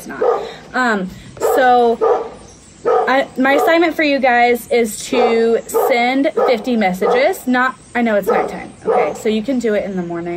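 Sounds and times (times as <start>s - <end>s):
dog barking: 0.0s - 0.6s, 1.4s - 4.0s, 5.1s - 7.5s, 8.2s - 9.3s
speech: 0.0s - 2.3s, 3.1s - 10.3s.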